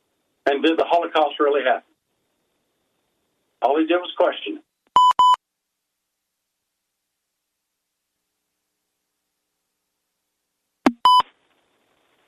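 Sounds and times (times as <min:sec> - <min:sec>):
speech: 0:00.6 - 0:01.9, 0:03.6 - 0:04.6
electronic phone beep during call disconnection: 0:05.0 - 0:05.4, 0:10.9 - 0:11.2.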